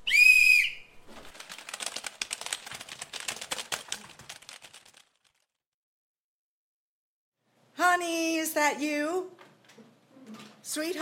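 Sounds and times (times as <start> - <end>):
sharp loud whistle blast: 0.0 - 0.9
job applicants typing on many computer keyboards: 1.3 - 5.4
speech: 8.0 - 9.4, 10.7 - 10.9.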